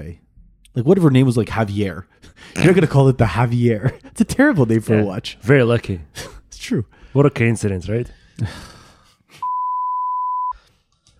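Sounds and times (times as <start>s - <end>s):
speech: 0.0s - 9.4s
censor bleep: 9.4s - 10.6s.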